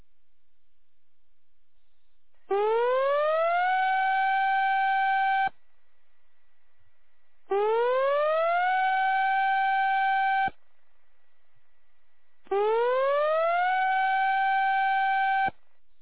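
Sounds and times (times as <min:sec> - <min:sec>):
tsunami warning siren blasts: 0:02.5 - 0:05.5, 0:07.5 - 0:10.6, 0:12.5 - 0:15.6.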